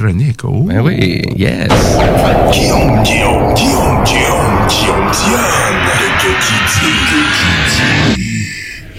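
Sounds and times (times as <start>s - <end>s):
speech: 0.0s - 8.6s
explosion sound effect with rumbling roar of blasts: 1.6s - 8.2s
sharp boom: 1.7s - 8.2s.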